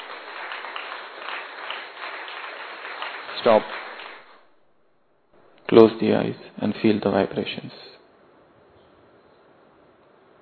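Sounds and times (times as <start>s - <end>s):
people clapping hands: 0.0s - 4.6s
speech: 3.4s - 3.8s, 5.8s - 8.0s.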